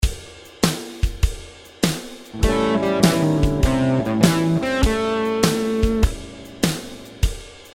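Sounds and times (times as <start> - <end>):
guitar playing blues passing notes: 2.4 - 7.4.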